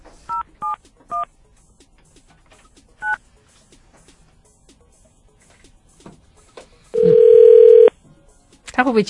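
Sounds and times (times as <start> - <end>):
telephone touch-tone dialing beeps: 7.0 - 7.9.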